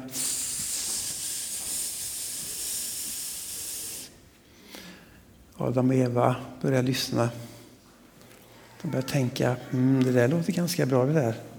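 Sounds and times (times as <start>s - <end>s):
snake hissing: 0.0s - 4.2s
speech: 5.6s - 7.5s, 8.8s - 11.5s.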